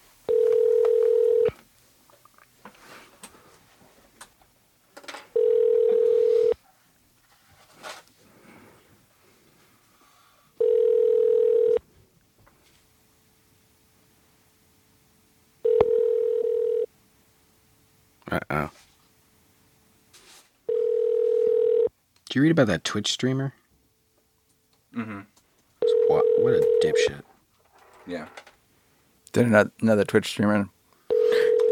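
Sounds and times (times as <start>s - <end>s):
telephone line tone to a phone in a voice booth: 0.3s - 1.6s, 5.4s - 6.6s, 10.6s - 11.8s, 15.6s - 16.9s, 20.7s - 21.9s, 25.8s - 27.2s, 31.1s - 31.7s
speech: 22.4s - 23.6s, 29.4s - 30.8s.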